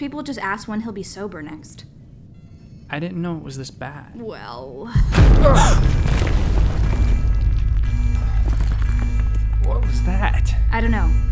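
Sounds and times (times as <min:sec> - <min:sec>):
speech: 0:00.0 - 0:02.0, 0:02.9 - 0:06.1, 0:09.9 - 0:11.3
deep explosion in the lower plant ring: 0:05.0 - 0:09.0.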